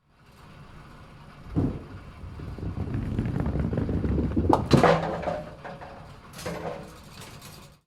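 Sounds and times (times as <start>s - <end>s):
one bowling pin hit: 1.5s - 6.8s.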